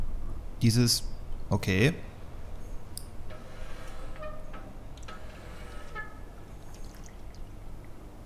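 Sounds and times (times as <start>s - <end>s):
speech: 0.6s - 2.1s
water trickling and pouring: 1.2s - 8.2s
gritty clicks: 2.1s - 8.0s
water and sediment sloshing and sliding inside a turning tube: 2.1s - 8.2s.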